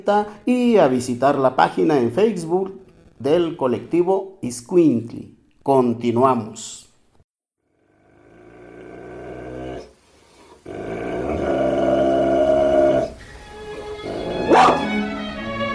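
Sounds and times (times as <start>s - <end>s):
speech: 0.0s - 6.8s
dogs growling and barking: 8.0s - 10.0s, 10.6s - 13.2s, 13.8s - 15.0s
dog yelping: 14.0s - 15.0s.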